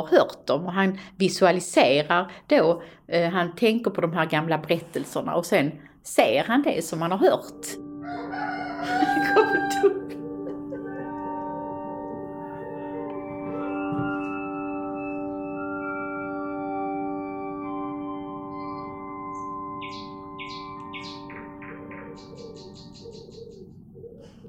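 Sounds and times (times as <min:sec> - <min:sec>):
speech: 0:00.0 - 0:10.0
humming drone of sustained tones: 0:07.8 - 0:23.6
laughter: 0:08.8 - 0:11.5
nightingale song: 0:13.1 - 0:24.4.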